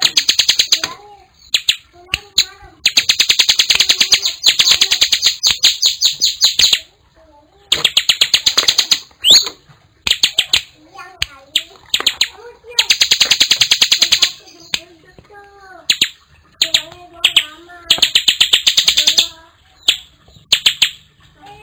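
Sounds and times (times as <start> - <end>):
bar-winged prinia chipping song: 0.0 - 21.6.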